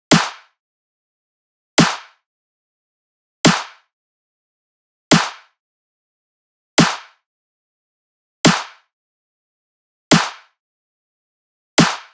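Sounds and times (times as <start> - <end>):
future bass drum loop with snare: 0.1 - 0.4, 1.8 - 2.0, 3.5 - 3.7, 5.1 - 5.4, 11.8 - 12.0.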